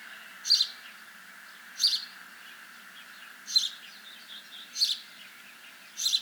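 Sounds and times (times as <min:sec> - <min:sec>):
house sparrow (Passer domesticus) sharp chirps: 0:00.4 - 0:00.8, 0:03.5 - 0:05.1, 0:05.9 - 0:06.2.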